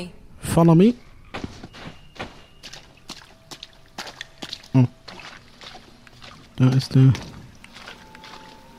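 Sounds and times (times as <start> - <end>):
speech: 0.0 - 1.5, 4.8 - 5.0, 6.6 - 7.3
water trickling and dripping inside a dark cave: 2.1 - 8.7.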